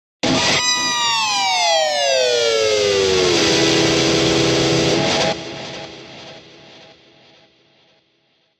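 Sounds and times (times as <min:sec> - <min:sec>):
electric guitar scream: 0:00.2 - 0:06.0.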